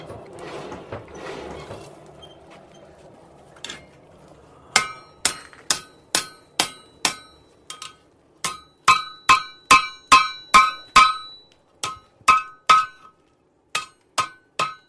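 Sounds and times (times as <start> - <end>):
blacksmith hammer striking hot metal on an anvil: 4.7 - 14.8.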